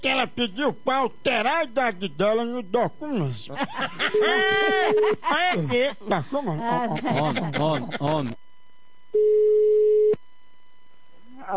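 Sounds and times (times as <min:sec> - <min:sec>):
speech: 0:00.0 - 0:08.4, 0:09.1 - 0:10.2, 0:11.4 - 0:11.5
laughter: 0:03.4 - 0:08.4
telephone line tone of an outgoing call: 0:04.1 - 0:05.2, 0:09.1 - 0:10.2.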